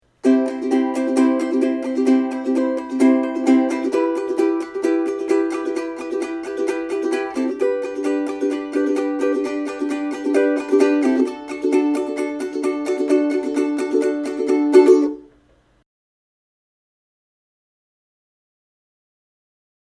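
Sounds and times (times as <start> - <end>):
ukulele strum: 0.0 - 15.4.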